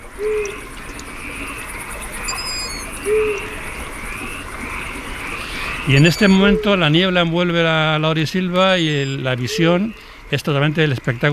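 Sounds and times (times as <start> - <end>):
low hoots: 0.0 - 10.6
night chorus of insects or frogs: 0.0 - 11.3
long-eared owl chicks' high-pitched squeaks: 2.2 - 3.4, 5.4 - 7.0, 8.8 - 9.8
speech: 5.9 - 11.3.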